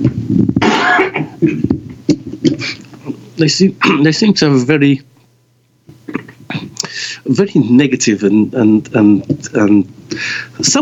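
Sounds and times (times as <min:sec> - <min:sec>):
person clearing throat: 0:00.6 - 0:01.8, 0:02.4 - 0:03.2, 0:03.8 - 0:04.1, 0:06.1 - 0:06.8
speech: 0:03.4 - 0:05.1, 0:07.3 - 0:10.7.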